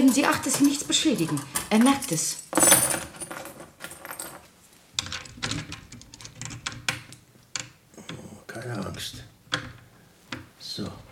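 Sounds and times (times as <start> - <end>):
speech: 0.0 - 2.8
bunch of metal keys and lock picks jangling and clinking: 0.5 - 4.4.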